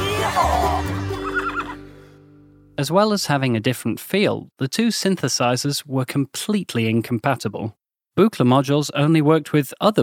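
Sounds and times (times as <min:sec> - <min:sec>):
horse neighing: 0:00.0 - 0:01.9
speech: 0:02.8 - 0:10.0.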